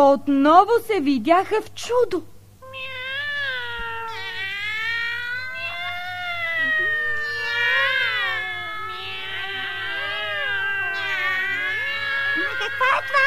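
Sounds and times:
speech: 0.0s - 3.0s
faint low hum: 0.0s - 13.2s
crowd of cats caterwauling and meowing: 2.6s - 13.2s.

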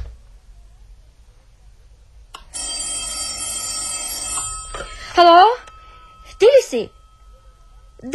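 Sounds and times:
telephone bell ringing: 2.4s - 8.1s
speech: 5.2s - 5.6s, 6.4s - 7.0s.

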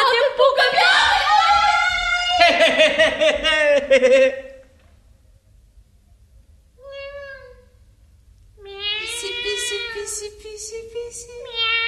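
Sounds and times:
laughter: 1.1s - 4.6s
speech: 3.9s - 4.5s, 10.6s - 11.8s
person imitating a kitten's meowing: 8.6s - 10.6s, 11.2s - 11.8s.

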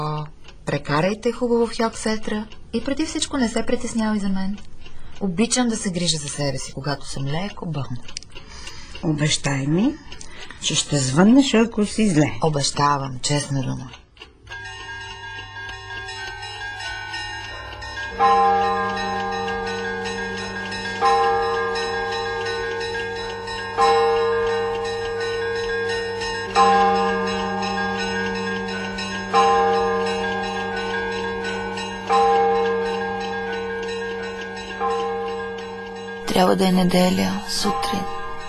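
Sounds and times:
speech: 0.7s - 14.0s, 18.2s - 18.7s, 36.4s - 38.2s
heavy church bell tolling: 14.6s - 38.4s.

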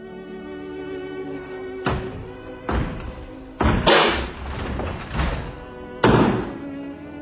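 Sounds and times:
heavy thuds of police battering a door: 1.9s - 6.6s.

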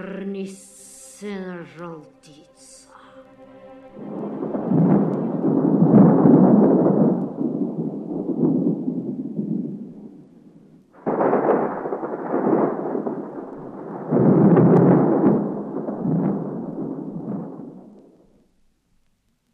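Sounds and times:
speech: 0.4s - 2.4s
loud deep thunder rumbling and rolling: 4.0s - 18.4s.

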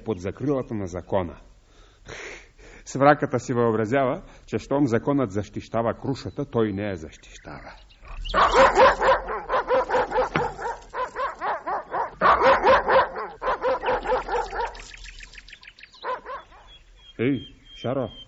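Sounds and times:
speech: 0.0s - 2.3s, 2.9s - 9.0s, 17.2s - 18.2s
dog barking rapidly and aggressively: 8.3s - 15.0s, 16.0s - 16.8s.

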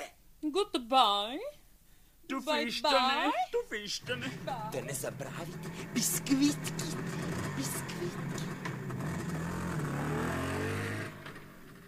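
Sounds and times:
speech: 0.5s - 1.6s, 2.3s - 8.7s
motorcycle engine revving and pulling away: 4.1s - 11.8s.

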